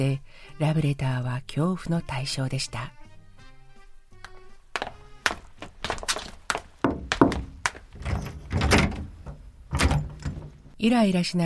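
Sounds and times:
speech: 0.0 - 3.0, 10.8 - 11.4
heavy knocks of a moving door: 5.3 - 10.7
door clunking open: 6.8 - 10.8
door latch rattling: 6.8 - 10.8
door scraping slide: 7.9 - 10.7.

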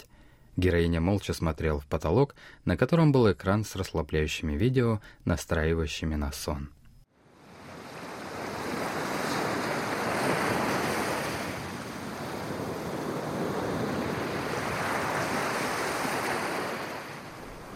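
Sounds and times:
speech: 0.6 - 6.8
ocean surf washing onto a seashore at evening sunset: 7.2 - 17.7
wind blowing across the microphone: 8.0 - 17.7.

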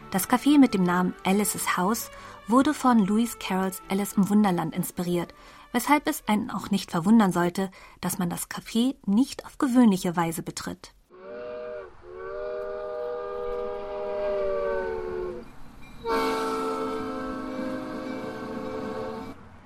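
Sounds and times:
miniature steam train horn blasts: 0.0 - 4.4, 11.1 - 19.4
speech: 0.1 - 11.0
wavering multi-tone miniature steam train whistle: 11.2 - 19.4.

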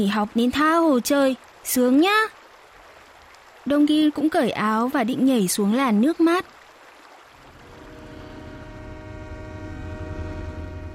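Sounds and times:
speech: 0.0 - 2.4, 3.6 - 6.6
deep rumbling undertone: 7.4 - 10.9
train whistle blaring: 7.4 - 10.9.

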